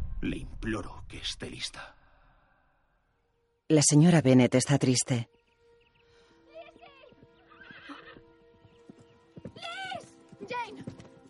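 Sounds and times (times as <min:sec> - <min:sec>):
speech: 0:00.2 - 0:02.0, 0:03.7 - 0:05.4
horse hooves clip-clopping: 0:06.5 - 0:11.2
horse whinnying: 0:07.5 - 0:08.2.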